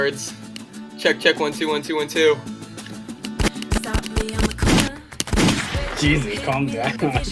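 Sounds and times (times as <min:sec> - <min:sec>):
speech: 0:00.0 - 0:02.6, 0:06.0 - 0:07.2
song playing: 0:00.0 - 0:07.2
gunshot sound effects from a soundboard: 0:03.4 - 0:06.3.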